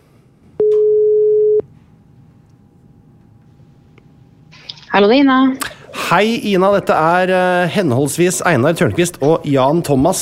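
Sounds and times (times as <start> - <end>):
telephone ringing tone while a call is placed: 0.6 - 1.6
speech: 5.0 - 10.2.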